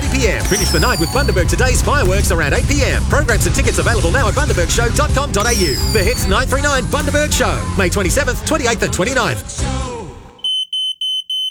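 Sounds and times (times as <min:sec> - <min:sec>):
speech: 0:00.2 - 0:09.8
smoke alarm beeping: 0:00.3 - 0:02.6, 0:05.4 - 0:06.5, 0:10.4 - 0:11.4.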